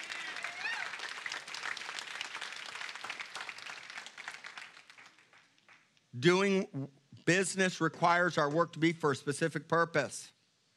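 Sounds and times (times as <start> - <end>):
crowd applauding with dense steady hand clapping: 0.0 - 6.0
speech: 6.2 - 10.4.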